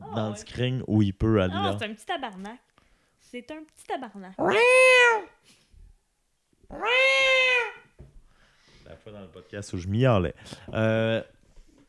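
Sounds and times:
speech: 0.2s - 5.6s, 6.7s - 7.3s, 9.0s - 11.4s
cat meowing with long drawn-out cry: 4.4s - 5.4s, 6.7s - 7.9s.

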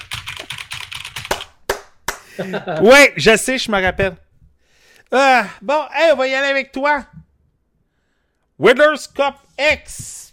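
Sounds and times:
rapid typing on Q95 mechanical keyboard: 0.0s - 1.5s
laughter: 2.3s - 2.9s
speech: 2.4s - 4.2s, 5.1s - 7.2s, 8.6s - 10.2s.

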